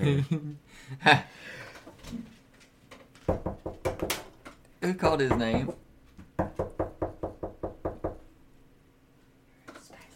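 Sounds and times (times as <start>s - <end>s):
speech: 0.0s - 1.5s, 4.9s - 5.8s
firm knocking on a door: 3.3s - 4.3s, 5.0s - 8.3s.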